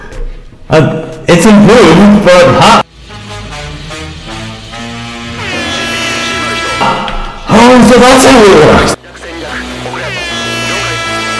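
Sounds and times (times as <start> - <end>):
speech: 0.7 - 2.8, 8.0 - 9.0
loud deep foghorn blast altered in pitch: 2.9 - 7.4, 10.1 - 11.3.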